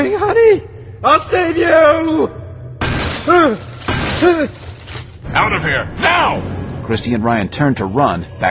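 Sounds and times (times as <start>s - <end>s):
speech: 1.0s - 2.4s, 3.2s - 4.6s, 5.3s - 8.5s
large hunk of glass falling and shattering: 2.8s - 5.2s.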